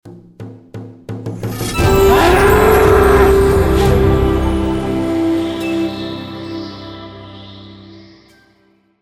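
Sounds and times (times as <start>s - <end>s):
bonus prize reveal jingle: 1.5s - 7.2s.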